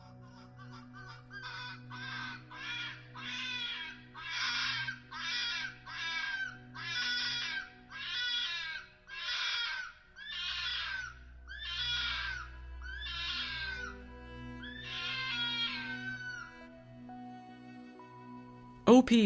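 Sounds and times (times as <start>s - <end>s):
fox screaming with harsh raspy shrieks: 0.0s - 16.7s
low constant hum: 0.0s - 19.2s
speech: 18.9s - 19.2s.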